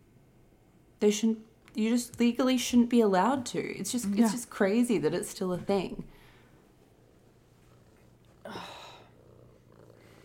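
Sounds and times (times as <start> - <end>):
speech: 1.0 - 6.2
cat purring: 6.9 - 10.2.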